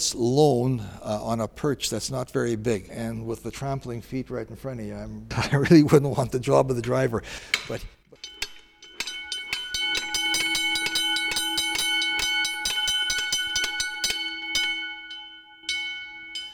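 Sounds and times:
speech: 0.0s - 8.0s
foot-pedal warning gong clanging on horse-drawn wagon: 8.2s - 16.5s.

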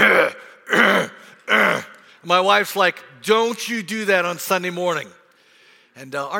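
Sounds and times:
man clearing throat with harsh raspy hacks: 0.0s - 2.0s
man with a cold hacking cough: 0.0s - 2.0s
speech: 2.2s - 5.2s, 6.0s - 6.3s.

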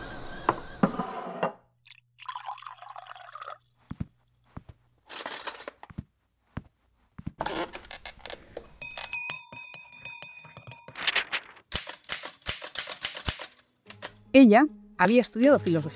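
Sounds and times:
typewriter bell ringing: 8.8s - 12.4s
manual typewriter typing: 10.9s - 14.2s
speech: 14.4s - 15.9s.

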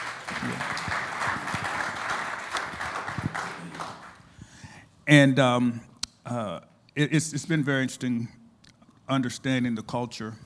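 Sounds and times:
room full of people applauding: 0.0s - 4.3s
speech: 5.1s - 8.4s, 9.1s - 10.4s.

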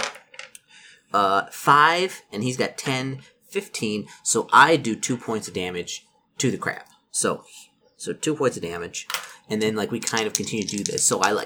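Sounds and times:
dice tumbling across a tabletop: 0.0s - 0.6s, 9.1s - 11.4s
speech: 1.1s - 11.4s.

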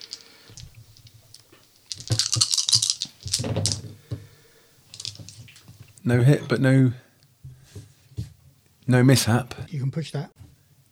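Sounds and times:
five dice rattling and clattering, rolled for an aiming roll in a game: 0.0s - 3.8s, 4.9s - 5.8s
speech: 6.1s - 7.0s, 8.9s - 10.4s.

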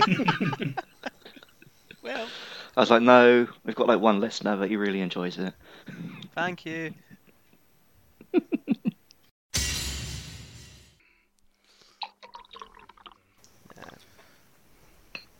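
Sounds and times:
speech: 0.0s - 0.8s, 2.8s - 7.1s
laughter: 0.0s - 2.4s, 8.2s - 9.0s
beer pouring into a glass: 12.0s - 13.2s
beer fizzing and gurgling: 12.0s - 14.0s.

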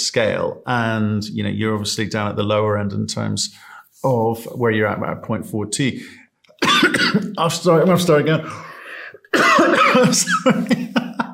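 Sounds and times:
speech: 0.1s - 6.2s, 6.8s - 8.7s, 9.4s - 10.9s
person coughing from a tickle in the throat: 6.6s - 7.4s, 9.2s - 11.0s
laughter: 9.6s - 11.3s.

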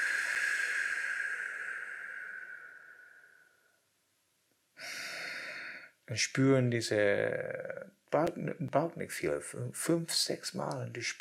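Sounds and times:
deep slow breathing for relaxation before sleep: 0.0s - 3.8s, 4.8s - 6.0s
speech: 6.1s - 11.1s.

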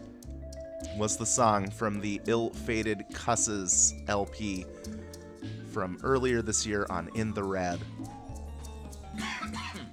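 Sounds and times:
speech: 1.0s - 8.1s
person coughing in short harsh bursts: 9.2s - 9.9s.

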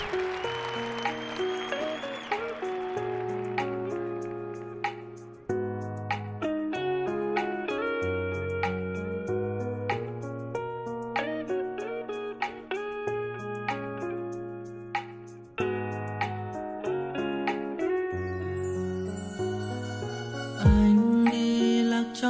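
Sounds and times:
instrumental song intro with chords, bass line and bright melody: 0.0s - 22.2s.

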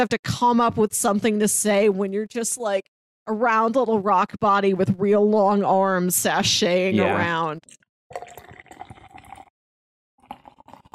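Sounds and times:
speech: 0.0s - 8.4s
Mountain Dew Flamin' Hot soda pouring: 8.1s - 9.5s, 10.2s - 10.9s.

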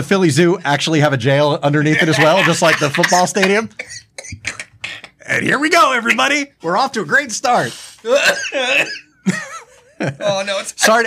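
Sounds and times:
speech: 0.0s - 4.6s, 5.3s - 11.0s
laughter: 1.9s - 5.2s, 8.6s - 10.7s
person coughing with strained and hacking bursts: 3.8s - 5.2s, 8.1s - 9.1s.

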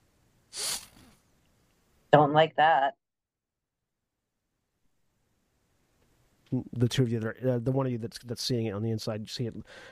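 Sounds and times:
long sharp breathy animalistic sniff: 0.5s - 1.2s
speech: 2.1s - 3.0s, 6.5s - 9.9s.

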